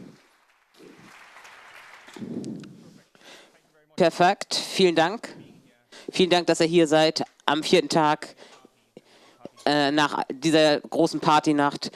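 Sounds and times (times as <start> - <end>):
audience clapping for speakers: 0.0 - 3.0
speech: 2.2 - 2.7, 4.0 - 5.4, 6.1 - 8.5, 9.6 - 11.9.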